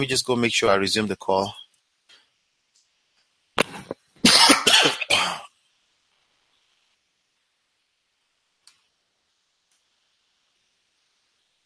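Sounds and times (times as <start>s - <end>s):
speech: 0.0s - 1.6s
person coughing loudly: 4.2s - 5.5s.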